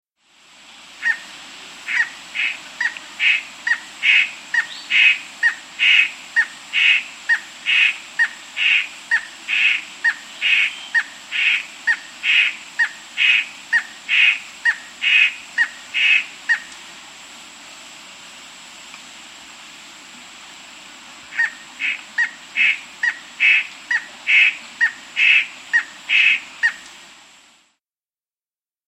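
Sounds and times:
Gray Antbird in South America: 1.0s - 1.3s, 1.9s - 16.7s, 21.3s - 26.8s.

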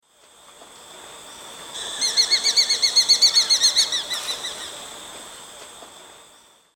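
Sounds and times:
Falco rufigularis calling in the Eastern Lowlands of South America: 1.8s - 4.8s.

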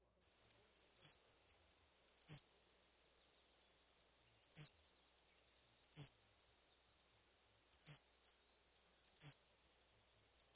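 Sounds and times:
male Eastern Kingbird song: 0.2s - 6.1s, 7.7s - 9.4s, 10.4s - 10.5s.

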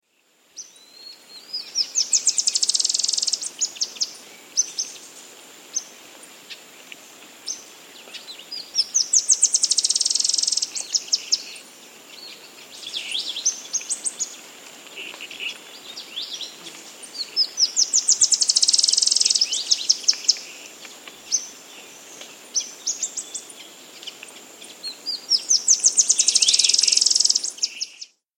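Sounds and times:
Ash-winged antwren in South America: 0.6s - 5.0s, 7.5s - 28.2s.

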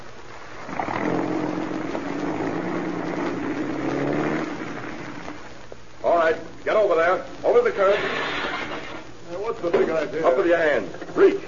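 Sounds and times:
car engine rumbling as the car drives away: 0.0s - 7.6s
car engine starting: 0.6s - 5.6s
speech: 9.6s - 11.4s.

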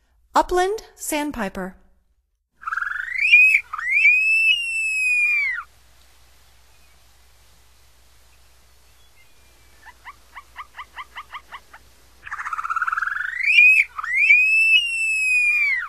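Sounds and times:
Upland Sandpiper song: 2.6s - 5.6s, 8.3s - 15.8s.

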